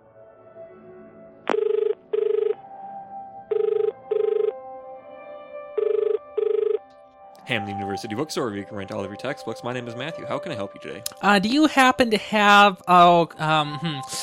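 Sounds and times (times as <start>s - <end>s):
telephone ringing with electronic trills: 1.5s - 2.6s, 3.5s - 4.6s, 5.8s - 6.8s
speech: 7.5s - 14.2s.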